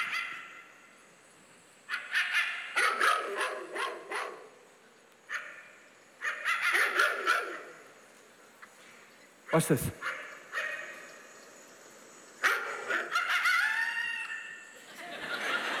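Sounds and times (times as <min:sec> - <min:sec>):
dog barking: 0:01.9 - 0:04.5, 0:05.3 - 0:07.7, 0:10.0 - 0:11.0, 0:12.4 - 0:13.8
speech: 0:09.6 - 0:10.2
laughter: 0:14.8 - 0:15.7.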